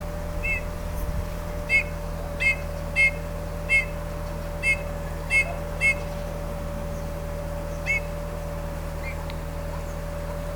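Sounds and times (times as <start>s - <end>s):
steady low mechanical hum: 0.0s - 10.5s
Eurasian bullfinch Pyrrhula pyrrhula giving soft piping whistled notes: 0.4s - 0.7s, 1.7s - 4.0s, 4.6s - 6.1s, 7.8s - 8.1s.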